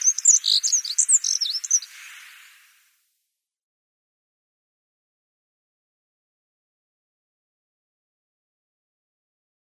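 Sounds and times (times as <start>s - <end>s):
black-throated accentor song with high scratchy warbled notes: 0.0s - 2.3s
hiss: 1.9s - 3.1s.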